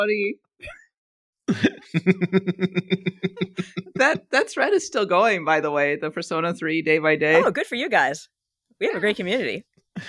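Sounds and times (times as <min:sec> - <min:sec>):
speech: 0:00.0 - 0:00.8, 0:01.5 - 0:10.0
person fake coughing with short voiced bursts: 0:01.5 - 0:01.9
laughter: 0:01.5 - 0:04.2.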